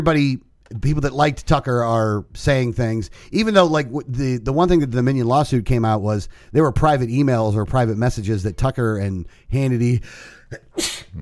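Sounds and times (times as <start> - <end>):
speech: 0.0 - 11.1
sneeze: 10.6 - 11.1.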